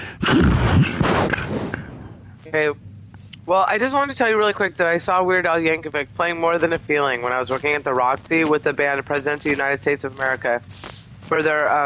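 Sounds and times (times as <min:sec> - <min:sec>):
person snoring: 0:00.0 - 0:02.2
speech: 0:02.5 - 0:11.8.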